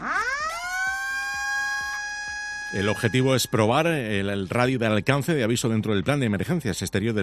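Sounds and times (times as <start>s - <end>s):
2,400-watt emergency alert siren on a safety tower during a test: 0.0s - 3.7s
speech: 2.7s - 7.2s.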